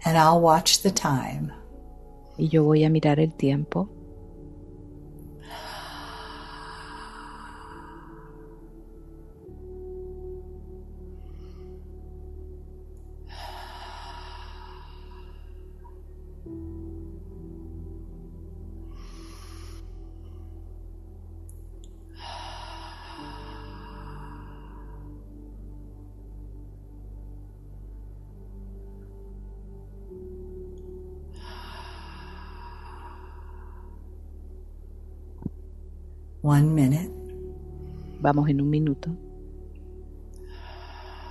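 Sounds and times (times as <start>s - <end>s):
low steady hum: 0.0s - 41.2s
speech: 0.1s - 1.6s, 2.4s - 4.0s, 36.5s - 37.1s, 38.2s - 39.3s
slow deep breathing during a guided breathing exercise: 4.0s - 36.4s, 37.2s - 38.2s, 39.2s - 41.2s.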